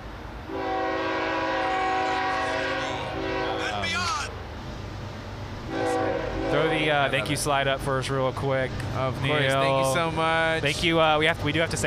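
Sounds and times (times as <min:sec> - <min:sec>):
train horn blaring: 0:00.5 - 0:04.1, 0:05.7 - 0:07.1
speech: 0:06.9 - 0:11.8.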